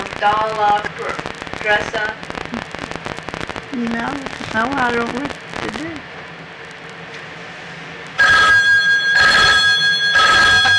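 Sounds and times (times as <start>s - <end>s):
speech: 0.2s - 2.6s, 3.7s - 6.2s
telephone ringing with electronic trill: 8.2s - 10.7s.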